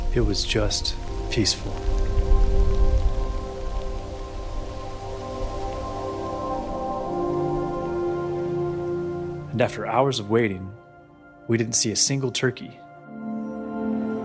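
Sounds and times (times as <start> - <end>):
light morning rain pattering at sunrise during a turkey hunt: 0.0 - 10.6
speech: 0.2 - 2.0, 9.6 - 10.8, 11.5 - 12.8.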